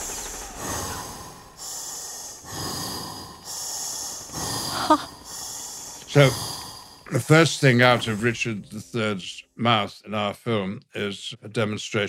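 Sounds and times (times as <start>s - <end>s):
heavy rhythmic breathing through a gas mask by an actor: 0.0s - 9.1s
speech: 4.9s - 5.1s, 6.1s - 6.5s, 7.1s - 12.0s.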